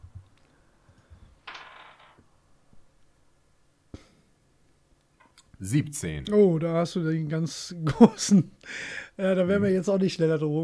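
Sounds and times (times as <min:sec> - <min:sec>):
dice shaken and rolled onto a table: 0:00.1 - 0:03.2
speech: 0:05.6 - 0:10.6
laughter: 0:07.8 - 0:08.6.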